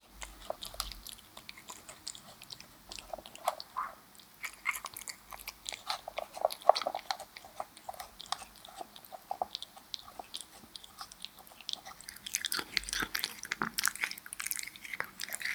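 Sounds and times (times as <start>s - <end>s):
cat eating wet food: 0.0s - 15.5s.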